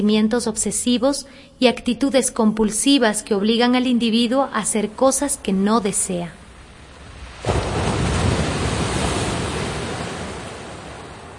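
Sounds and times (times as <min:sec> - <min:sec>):
speech: 0:00.0 - 0:06.4
ocean swell rushing around a boat at sea: 0:06.4 - 0:11.3.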